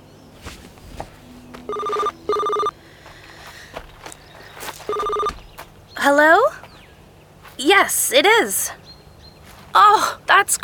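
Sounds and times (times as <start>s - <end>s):
faint noise: 0.0s - 10.6s
footsteps of people walking to a car: 0.4s - 6.8s, 7.4s - 8.1s
mobile phone ringing with a loud electronic tone: 1.6s - 2.8s, 4.8s - 5.4s
speech: 7.9s - 8.8s, 10.4s - 10.6s.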